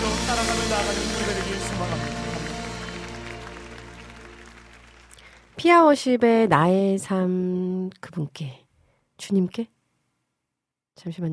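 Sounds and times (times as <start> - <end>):
many hands clapping in thanks to the Lord: 0.0 - 5.9
speech: 0.3 - 2.4, 5.6 - 8.6, 9.2 - 9.8, 11.0 - 11.3.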